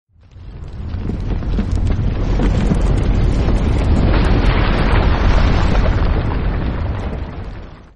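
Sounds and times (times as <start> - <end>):
trembling rumble: 0.1 - 7.9.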